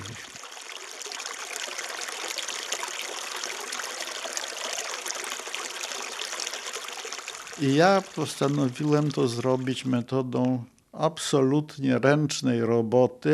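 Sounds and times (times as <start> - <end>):
fountain water trickling and splashing: 0.0 - 10.6
speech: 7.6 - 13.3.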